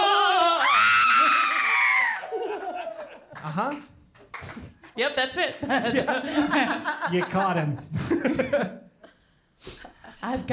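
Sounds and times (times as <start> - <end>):
man screaming: 0.0 - 2.2
laughter: 2.2 - 3.6, 5.6 - 9.2
speech: 3.5 - 8.8, 10.2 - 10.5.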